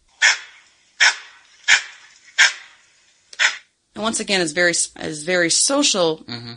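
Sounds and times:
Cat Ba langur alarm call, bark-like screech: 0:00.2 - 0:02.8
speech: 0:04.0 - 0:06.5.

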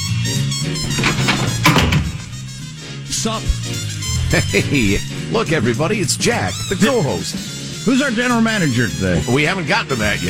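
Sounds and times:
door-opening sound effect with groaning creak: 0:00.6 - 0:02.8
low wooden thunks: 0:00.8 - 0:02.6
speech: 0:03.2 - 0:10.2.

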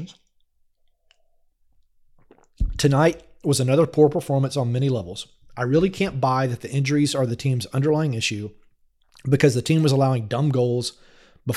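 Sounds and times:
speech: 0:00.0 - 0:00.2, 0:02.8 - 0:08.6, 0:09.2 - 0:11.5
person sipping coffee: 0:00.8 - 0:03.4.

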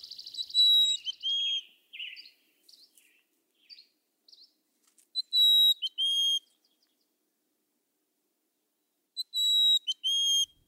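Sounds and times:
Mountain Chickadee song of the Sierra Nevada population: 0:00.1 - 0:02.3, 0:05.2 - 0:06.5, 0:09.2 - 0:10.6.

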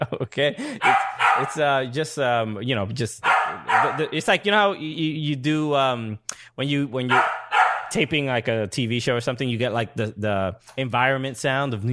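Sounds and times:
speech: 0:00.0 - 0:11.9
dog barking and yipping: 0:00.8 - 0:01.6, 0:03.2 - 0:04.2, 0:07.1 - 0:08.0.

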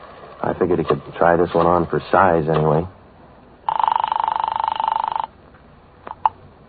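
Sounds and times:
speech: 0:00.6 - 0:03.0
desk phone ringing on an outgoing call in an office: 0:03.7 - 0:05.3
receiver clicks: 0:06.0 - 0:06.4.

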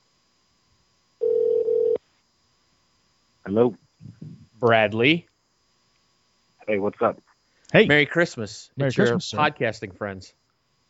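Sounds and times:
outgoing phone call ringback tone: 0:01.2 - 0:02.0
speech: 0:03.5 - 0:05.3, 0:06.7 - 0:10.4.

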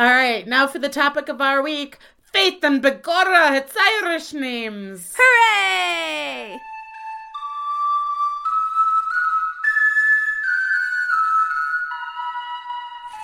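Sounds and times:
speech: 0:00.0 - 0:06.7
Irish tin whistle playing a bright melody: 0:06.6 - 0:13.2.

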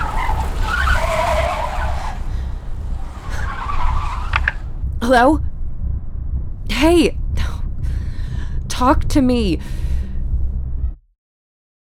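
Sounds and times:
car tires screeching as the driver swerves: 0:00.0 - 0:05.2
low car engine rumble: 0:00.0 - 0:11.0
speech: 0:05.1 - 0:05.5, 0:06.8 - 0:07.2, 0:08.8 - 0:09.8.

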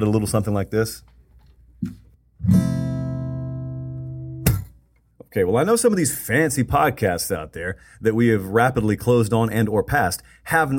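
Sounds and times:
speech: 0:00.0 - 0:01.1, 0:01.8 - 0:02.8, 0:05.3 - 0:10.7
single guitar chord ringing as a transition chime: 0:02.4 - 0:04.7.

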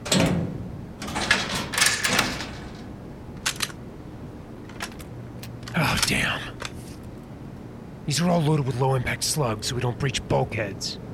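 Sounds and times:
latch clack: 0:00.0 - 0:03.8
weapons locker being opened with clicks and rattles: 0:00.0 - 0:03.8, 0:04.6 - 0:07.2
speech: 0:05.8 - 0:06.5, 0:08.1 - 0:11.1.

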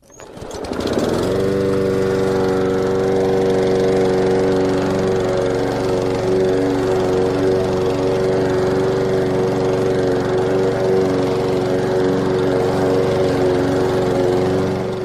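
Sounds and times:
lawn mower engine running: 0:00.0 - 0:15.0.

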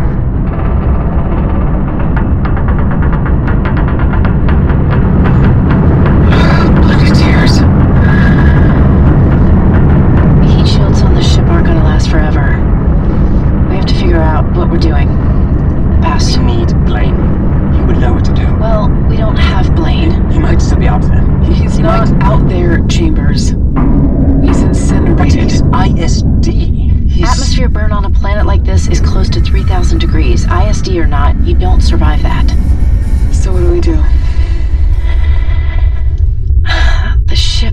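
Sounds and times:
loud low rumbling roar of a ship from atmospheric burn: 0:00.0 - 0:36.7
sharper crackling bursts: 0:00.0 - 0:37.6.

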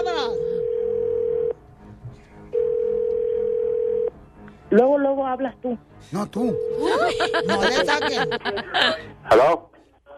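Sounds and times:
telephone dial tone while a number is redialed: 0:00.5 - 0:01.5, 0:02.6 - 0:04.1
speech: 0:04.7 - 0:09.7
laughter: 0:06.8 - 0:09.0.

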